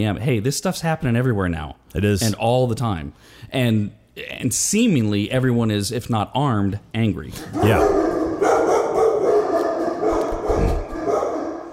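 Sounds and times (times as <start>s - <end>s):
speech: 0.0s - 8.0s
dog barking and yipping: 7.4s - 11.7s.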